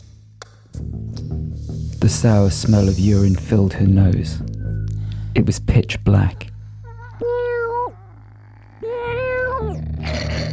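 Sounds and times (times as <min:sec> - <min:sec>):
low steady hum: 0:01.0 - 0:10.5
speech: 0:02.0 - 0:04.5, 0:05.3 - 0:06.5
cat meowing insistently in protest: 0:07.1 - 0:09.8.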